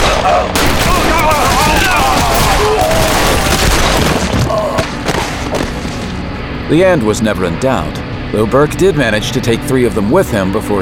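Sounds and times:
gunfire in a street shootout: 0.0s - 6.2s
people shouting: 0.2s - 5.2s
speech: 6.7s - 10.8s.

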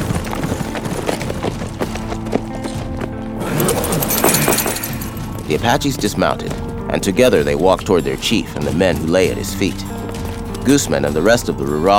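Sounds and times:
hooves of a war party's horses clip-clopping: 0.0s - 5.4s
speech: 5.5s - 10.0s, 10.6s - 11.9s.

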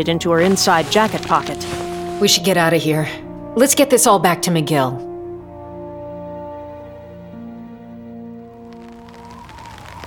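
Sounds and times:
ice pellets pattering on a surface outside a church in Canada: 0.0s - 2.9s, 8.7s - 10.0s
speech: 0.0s - 5.1s.

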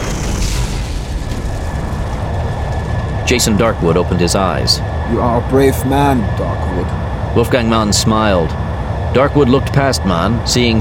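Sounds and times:
heavy explosions of armored vehicles: 0.0s - 5.5s
speech: 3.3s - 10.7s.

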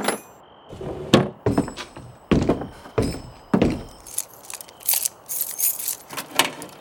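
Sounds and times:
wooden thunks and knocks from objects shoved around in a desk drawer: 0.7s - 4.6s
light metallic rattles and jangles in a desk drawer: 3.0s - 6.7s.

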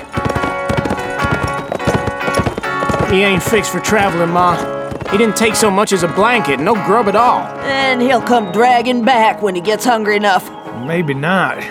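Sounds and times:
horse hooves clip-clopping as a rider rides away: 0.0s - 10.7s
speech: 3.1s - 11.6s.

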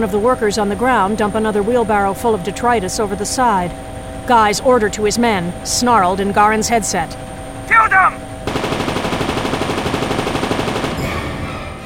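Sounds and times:
speech: 0.0s - 8.2s
heavy machine gun firing: 8.5s - 11.5s.

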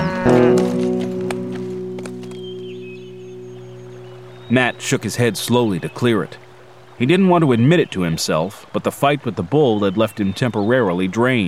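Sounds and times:
soft irregular hoof clops of a horse and rider moving off: 0.0s - 5.4s
steady low droning tone: 0.0s - 7.0s
speech: 4.5s - 11.4s.

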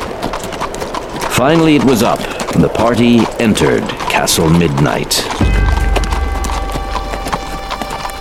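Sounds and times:
horse hooves clip-clopping on a hard surface at walking pace: 0.0s - 8.1s
speech: 1.4s - 5.8s
low rumble: 5.4s - 8.1s.

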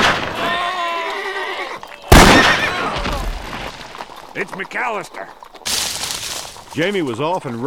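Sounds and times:
long wavering horse whinny: 0.0s - 3.5s
rifle shot fired in a swamp: 2.1s - 3.4s
speech: 4.4s - 5.4s, 6.8s - 7.6s.

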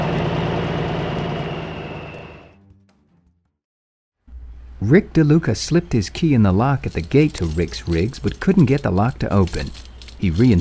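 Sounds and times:
diesel engine roaring while running up through gears: 0.0s - 2.5s
speech: 4.8s - 10.5s.

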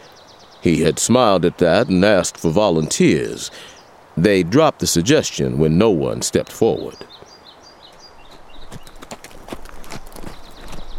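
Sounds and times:
speech: 0.6s - 7.3s
saddled horse hooves clip-clopping: 7.9s - 10.9s.

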